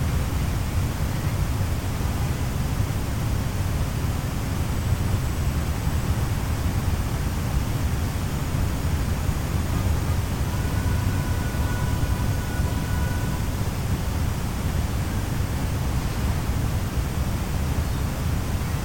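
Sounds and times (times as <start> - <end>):
city noise with deep low rumble: 0.0 - 18.8
white noise: 0.0 - 18.8
faint thin tone: 9.7 - 14.3.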